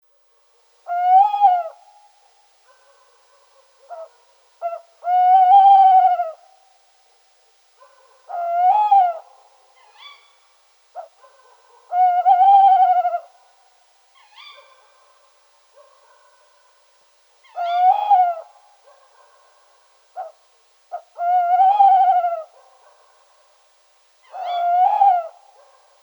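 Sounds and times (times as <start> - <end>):
Tawny owl soft calls and short sharp notes: 0.8 - 6.8, 7.8 - 26.0
Tawny owl hooting: 0.9 - 2.1, 3.8 - 6.5, 7.8 - 10.4, 11.0 - 13.4, 14.2 - 14.9, 17.4 - 19.0, 20.2 - 23.0, 24.2 - 25.8.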